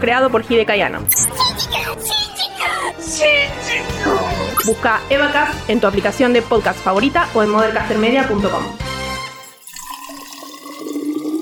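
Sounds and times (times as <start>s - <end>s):
speech: 0.0s - 2.2s, 2.8s - 8.8s
hot water poured into a mate gourd with fresh yerba: 9.4s - 11.3s.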